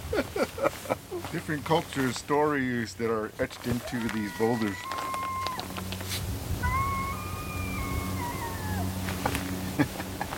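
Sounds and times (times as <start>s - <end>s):
laughter: 0.0s - 1.4s, 8.5s - 10.3s
low steady outdoor rumble: 0.0s - 10.3s
speech: 1.3s - 5.0s
coyote howling: 3.8s - 5.9s, 6.5s - 9.3s.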